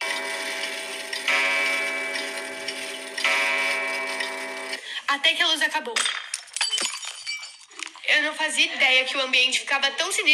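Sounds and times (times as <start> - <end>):
clock ticking: 0.0 - 4.8
speech: 5.1 - 6.2, 8.1 - 10.3.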